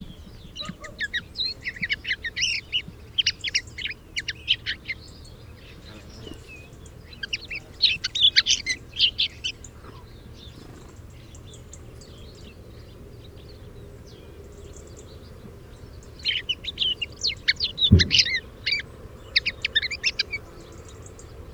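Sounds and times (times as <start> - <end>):
common linnet Carduelis cannabina singing: 0.0 - 9.8, 15.9 - 21.5.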